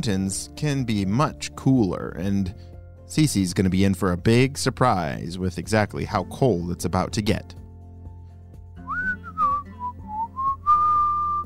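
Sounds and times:
speech: 0.0s - 7.6s
person whistling a short melody: 8.8s - 11.4s.

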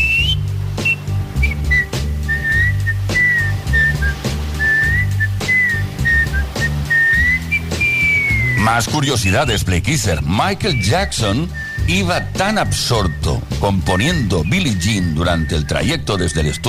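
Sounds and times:
band backing bass: 0.0s - 16.6s
clear high whistled melody: 0.0s - 16.6s
regular drum hits: 0.8s - 9.0s
speech: 8.7s - 16.6s.

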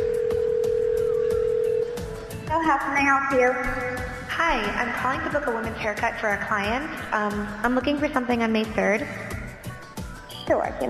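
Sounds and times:
steady telephone dialing tone before a phone call: 0.0s - 2.2s
speech: 2.6s - 9.2s, 10.5s - 10.8s.

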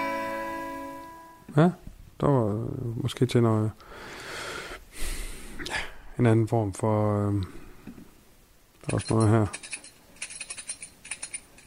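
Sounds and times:
speech: 1.6s - 4.2s, 6.2s - 7.6s, 8.8s - 9.7s
keys rattling: 8.8s - 11.6s.

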